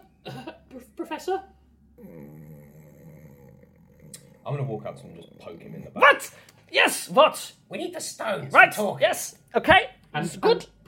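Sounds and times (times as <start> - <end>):
speech: 0.8 - 2.2, 4.4 - 10.8
voice imitating slow heavy breathing of a brooding professor: 2.0 - 6.5.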